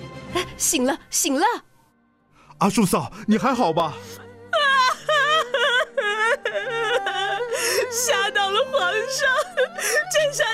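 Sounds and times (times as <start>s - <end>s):
speech: 0.6s - 1.7s, 2.6s - 4.2s, 7.9s - 10.5s
woman crying in high wailing sobs: 4.0s - 10.5s.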